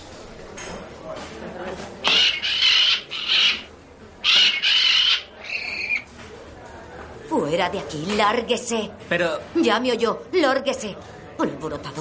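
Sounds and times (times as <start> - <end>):
caged parrot squawking in a bar: 2.0 - 6.1
speech: 7.5 - 11.9.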